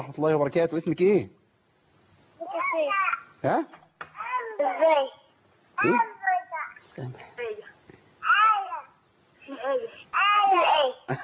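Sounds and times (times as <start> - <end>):
speech: 0.0 - 1.4, 2.8 - 3.8, 4.6 - 5.2, 5.8 - 6.1, 7.0 - 7.3, 9.6 - 11.2
small child babbling on a phone call: 2.4 - 3.4, 4.2 - 6.8, 7.4 - 11.1.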